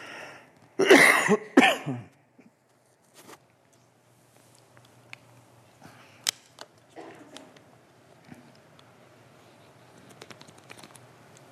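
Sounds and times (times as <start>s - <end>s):
person coughing at a pulpit during a sermon: 0.8s - 2.1s
faint clicks and rustles: 2.6s - 11.5s.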